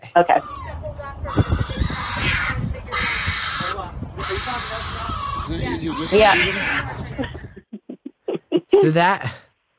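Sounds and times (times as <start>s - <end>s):
speech: 0.2s - 0.6s, 4.5s - 7.0s, 8.8s - 9.4s
raccoon screaming: 0.2s - 7.0s
laughter: 6.7s - 9.0s.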